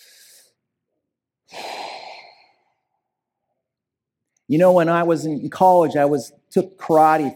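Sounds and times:
person inhaling: 0:00.0 - 0:00.6, 0:01.5 - 0:03.1
breathy exhale: 0:01.5 - 0:02.9
speech: 0:04.5 - 0:07.3.

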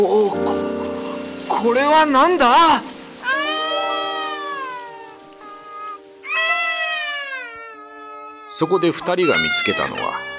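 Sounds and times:
speech: 0:00.0 - 0:00.6, 0:01.6 - 0:03.0, 0:08.5 - 0:10.3
baby wailing loudly: 0:03.2 - 0:10.3.

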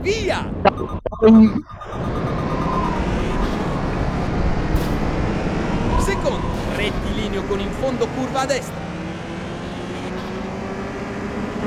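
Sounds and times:
speech: 0:00.0 - 0:02.1, 0:06.2 - 0:08.9
short electronic tones: 0:00.5 - 0:04.7
racing car engine in an audio racing game revving: 0:02.9 - 0:11.6.

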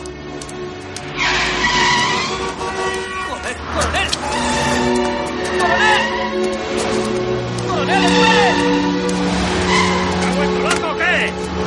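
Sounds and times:
cars rushing past on a city street: 0:00.8 - 0:11.6
tire squeal: 0:01.1 - 0:10.7.

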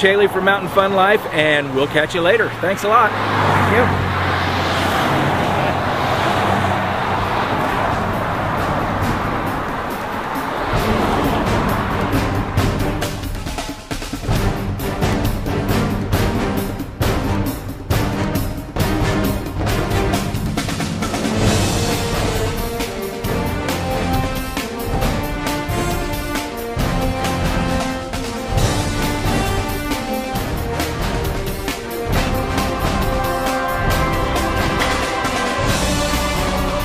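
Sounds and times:
speech: 0:00.0 - 0:04.1
engine and road noise from a car in motion: 0:00.0 - 0:36.8
wind rushing past a moving car: 0:03.1 - 0:36.8.

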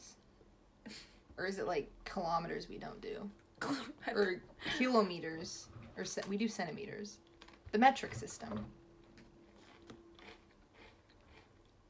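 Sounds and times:
speech: 0:01.4 - 0:08.8
wet chewing and crunching of food: 0:09.0 - 0:11.8.

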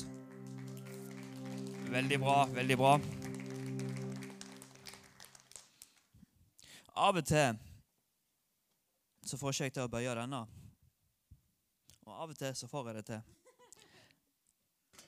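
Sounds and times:
sustained musical tone: 0:00.0 - 0:05.5
crowd applauding boys on stage: 0:00.0 - 0:06.1
speech: 0:01.9 - 0:03.2, 0:07.0 - 0:07.7, 0:09.3 - 0:10.6, 0:12.1 - 0:13.4.

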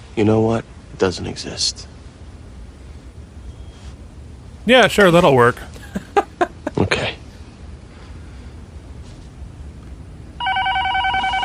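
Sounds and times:
speech: 0:00.2 - 0:01.9, 0:04.7 - 0:05.7
laughter: 0:05.6 - 0:07.0
telephone with a bright trilling electronic ring: 0:10.4 - 0:11.4.

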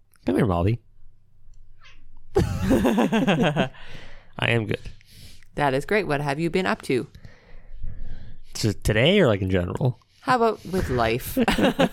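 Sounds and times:
speech: 0:00.2 - 0:00.9, 0:02.4 - 0:05.0, 0:05.6 - 0:07.2, 0:08.6 - 0:11.9
cat yowling: 0:01.8 - 0:02.1
laughter: 0:02.4 - 0:03.8, 0:11.3 - 0:11.9.

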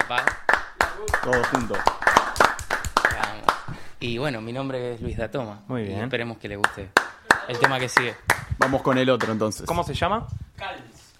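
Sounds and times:
hands clapping: 0:00.0 - 0:03.8, 0:06.6 - 0:09.8
speech: 0:01.0 - 0:02.0, 0:04.0 - 0:10.4.

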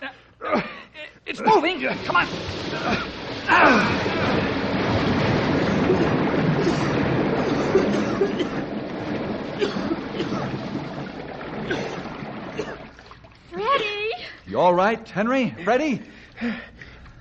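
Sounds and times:
speech: 0:01.3 - 0:04.5, 0:08.2 - 0:08.8, 0:14.6 - 0:16.7
water bursting out through a stuck door as it is pulled open: 0:01.4 - 0:14.0.

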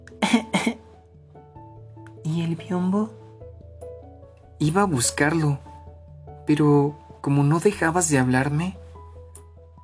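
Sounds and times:
throaty coughs: 0:00.2 - 0:00.8
speech: 0:02.4 - 0:03.2, 0:04.6 - 0:05.7, 0:06.5 - 0:08.8.

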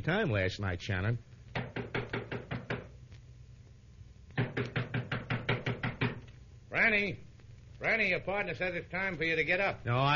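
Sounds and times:
speech: 0:00.0 - 0:01.9, 0:04.6 - 0:04.8, 0:06.9 - 0:10.1
rapid firm knocking on a door: 0:01.5 - 0:03.0, 0:04.4 - 0:06.2.

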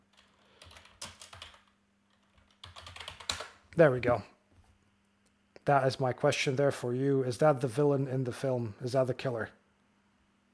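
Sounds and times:
typing on a computer keyboard: 0:00.1 - 0:03.6
speech: 0:03.8 - 0:04.3, 0:05.6 - 0:09.6.

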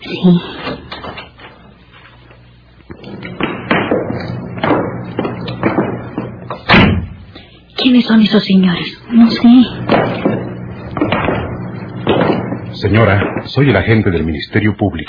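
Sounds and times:
speech: 0:00.1 - 0:00.8, 0:08.0 - 0:10.1, 0:12.9 - 0:15.0
heavy footsteps on a hard floor: 0:02.8 - 0:07.5, 0:09.2 - 0:13.8.

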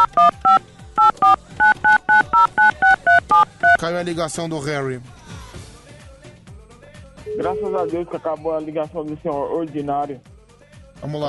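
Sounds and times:
speech: 0:00.0 - 0:00.6, 0:03.8 - 0:05.2, 0:07.4 - 0:10.3, 0:11.0 - 0:11.2
telephone keypad dialing tones: 0:00.0 - 0:03.8, 0:07.3 - 0:08.0.

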